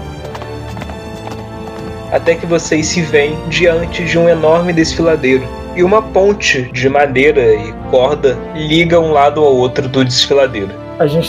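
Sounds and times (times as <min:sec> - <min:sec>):
horse hooves clip-clopping: 0:00.0 - 0:02.7
speech: 0:02.1 - 0:11.2.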